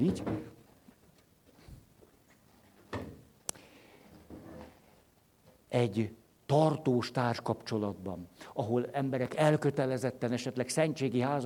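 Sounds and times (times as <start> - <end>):
speech: 0.0 - 0.5, 5.7 - 11.4
chairs set down on a hard floor: 0.0 - 0.6
chairs scraping on a hard floor: 4.2 - 5.0.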